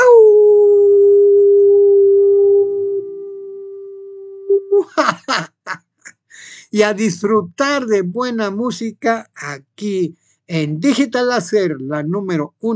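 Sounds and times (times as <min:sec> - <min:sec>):
long loud sustained howl: 0:00.2 - 0:04.8
speech: 0:04.8 - 0:05.5, 0:06.7 - 0:12.7
short breathy bursts like laughter: 0:04.8 - 0:06.7.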